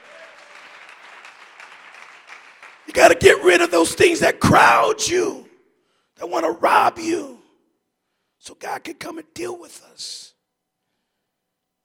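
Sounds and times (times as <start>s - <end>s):
church congregation clapping hands in praise: 0.0s - 4.2s
speech: 2.9s - 5.4s, 6.2s - 7.4s, 8.4s - 10.3s.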